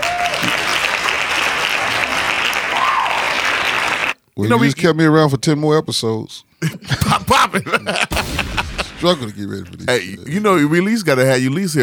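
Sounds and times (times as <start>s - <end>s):
crowd applauding with dense overlapping hand claps: 0.0s - 4.3s
laughter: 0.0s - 4.8s, 6.5s - 10.7s
speech: 4.4s - 11.8s.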